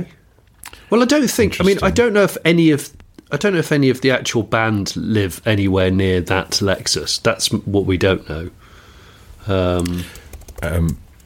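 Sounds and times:
speech: 0:00.0 - 0:00.2, 0:00.9 - 0:08.6, 0:09.4 - 0:11.0
typing on a computer keyboard: 0:09.8 - 0:10.8.

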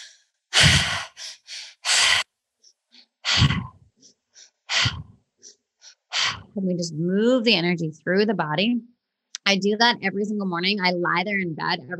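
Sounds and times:
energizing triactive breathwork in through belly and chest, out through the mouth: 0:00.0 - 0:02.2, 0:03.0 - 0:06.6
speech: 0:06.6 - 0:08.9, 0:09.5 - 0:11.9.

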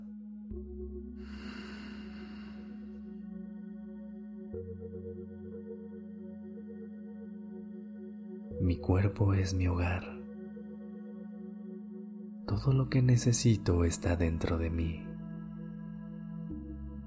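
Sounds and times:
sustained calm musical tones: 0:00.0 - 0:17.0
person breathing in and out during a guided meditation: 0:01.2 - 0:03.3
speech: 0:08.7 - 0:10.2, 0:12.5 - 0:15.1.

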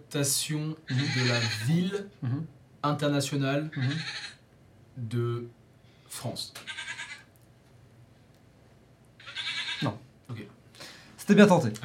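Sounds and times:
speech: 0:00.1 - 0:04.4, 0:05.0 - 0:07.0, 0:09.8 - 0:10.6, 0:11.3 - 0:11.8
goat bleating: 0:00.9 - 0:01.8, 0:03.7 - 0:04.4, 0:06.6 - 0:07.3, 0:09.2 - 0:10.0.

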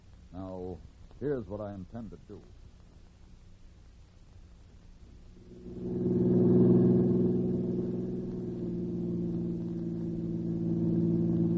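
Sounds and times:
speech: 0:00.4 - 0:02.6
car engine droning as the vehicle drives along: 0:05.3 - 0:11.5.

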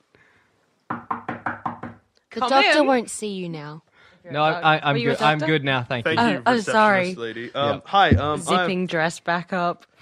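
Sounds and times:
knocking on a door: 0:00.9 - 0:02.1, 0:08.1 - 0:08.5
speech: 0:02.4 - 0:09.9.

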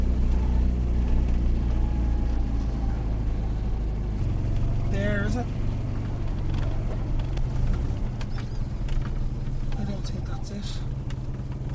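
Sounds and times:
car engine and road noise while driving: 0:00.0 - 0:11.7.

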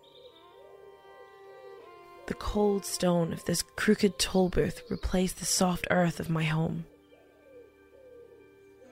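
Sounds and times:
bird calls in the fields: 0:00.0 - 0:08.8
speech: 0:02.3 - 0:06.9.

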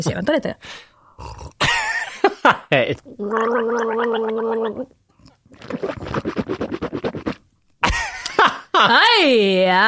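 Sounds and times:
speech: 0:00.0 - 0:01.6, 0:02.4 - 0:05.0, 0:05.6 - 0:07.2, 0:08.4 - 0:09.8
person drinking hot coffee: 0:01.2 - 0:01.6, 0:03.2 - 0:07.5
vocal noise: 0:01.2 - 0:01.6, 0:02.9 - 0:07.5.

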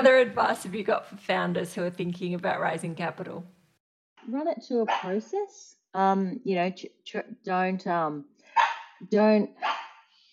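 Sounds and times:
speech: 0:00.0 - 0:03.6, 0:04.2 - 0:09.8
dog barking at the front door: 0:04.9 - 0:05.2, 0:08.5 - 0:09.0, 0:09.6 - 0:10.1.

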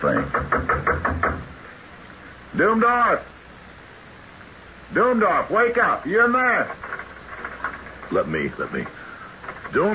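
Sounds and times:
speech: 0:00.0 - 0:00.5, 0:02.6 - 0:03.4, 0:04.9 - 0:06.8, 0:08.1 - 0:09.0, 0:09.7 - 0:09.9
firm knocking on a wooden door: 0:00.0 - 0:01.5.

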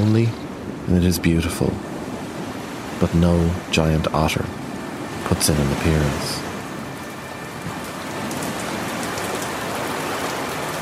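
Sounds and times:
speech: 0:00.2 - 0:01.9, 0:03.0 - 0:04.6, 0:05.3 - 0:06.4
heavy rain falling: 0:03.0 - 0:10.8.

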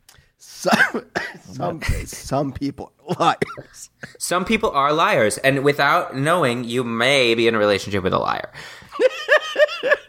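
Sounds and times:
speech: 0:00.6 - 0:09.2
throaty cough: 0:00.7 - 0:02.0, 0:03.1 - 0:04.2
laughter: 0:09.0 - 0:10.0.

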